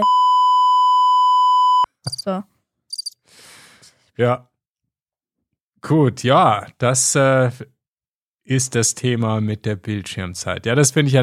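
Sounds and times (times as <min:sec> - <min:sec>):
steady electronic beep tone: 0:00.0 - 0:02.3
speech: 0:02.3 - 0:02.5, 0:04.2 - 0:04.5, 0:05.8 - 0:07.8, 0:08.5 - 0:11.2.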